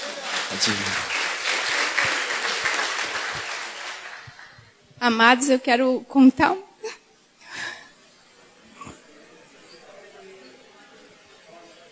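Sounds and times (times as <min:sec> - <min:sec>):
large crowd applauding: 0:00.0 - 0:04.8
speech: 0:00.5 - 0:01.2, 0:05.0 - 0:06.7.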